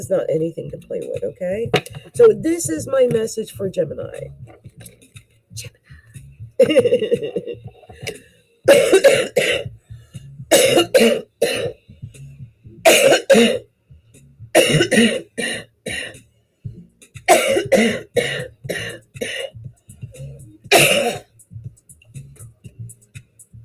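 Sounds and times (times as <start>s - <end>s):
speech: 0.0s - 5.0s, 5.6s - 5.8s, 6.6s - 9.8s, 10.5s - 11.8s, 12.9s - 13.7s, 14.6s - 15.6s, 17.8s - 19.5s
harsh chesty coughs from a person with the flu: 6.6s - 9.7s, 10.5s - 11.8s, 12.8s - 13.6s, 14.6s - 16.2s, 17.3s - 19.6s, 20.7s - 21.3s.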